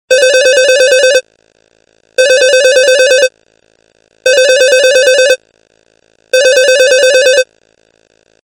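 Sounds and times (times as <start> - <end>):
classic telephone ringing: 0.1 - 1.2, 2.2 - 3.3, 4.3 - 5.4, 6.4 - 7.5.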